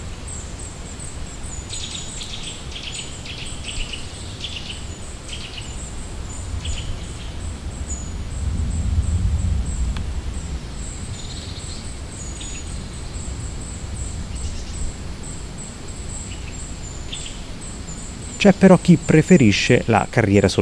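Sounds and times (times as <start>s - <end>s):
wild birds including a robin and a magpie singing and chirping in tree branches: 0.0s - 20.6s
low rumble of a passing airplane: 5.8s - 20.6s
speech: 18.4s - 20.6s.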